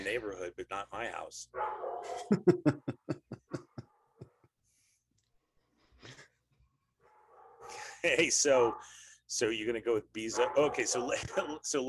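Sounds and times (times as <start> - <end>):
speech: 0.0 - 3.2, 8.0 - 11.8
female pet dog barking: 1.5 - 2.3, 7.0 - 7.9, 8.5 - 9.0, 10.3 - 11.6
laughter: 2.1 - 4.4.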